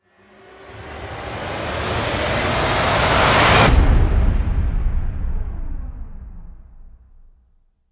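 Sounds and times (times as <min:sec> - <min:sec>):
wide riser: 0:00.0 - 0:05.8.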